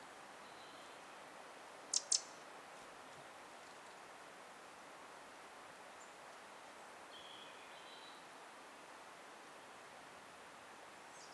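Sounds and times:
faint background hiss: 0.0 - 11.3
Eurasian wren Troglodytes troglodytes clicking calls: 1.9 - 2.3.

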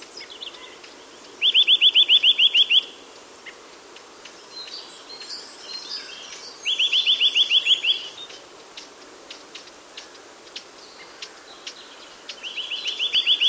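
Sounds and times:
Eurasian nuthatch Sitta europaea calling with upslurred whistled notes: 1.4 - 3.0, 6.1 - 8.4, 12.3 - 13.4.

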